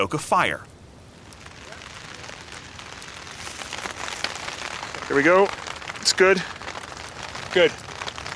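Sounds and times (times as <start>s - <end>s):
speech: 0.0s - 0.7s, 5.1s - 6.6s, 7.6s - 7.8s
steady rain pattering on surfaces at a camp: 0.0s - 8.3s.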